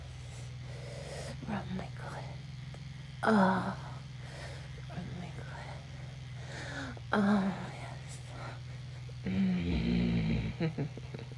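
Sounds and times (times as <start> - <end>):
speech: 3.2 - 3.8, 7.1 - 7.6, 10.6 - 11.3
person growling low and throaty: 3.2 - 8.6, 9.2 - 11.1.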